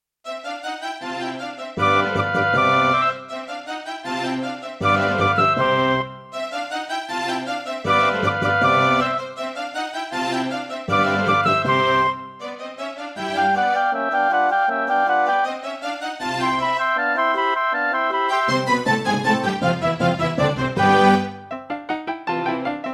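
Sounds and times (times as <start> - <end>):
classical music on a Roland SC-88ST Pro sound module: 0.3 - 22.9.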